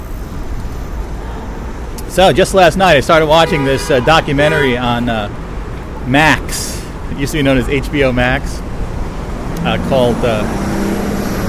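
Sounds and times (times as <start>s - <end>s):
bus engine rumble: 0.0s - 11.4s
city street traffic: 0.0s - 11.4s
speech: 2.1s - 5.4s, 6.0s - 8.7s, 9.6s - 10.6s.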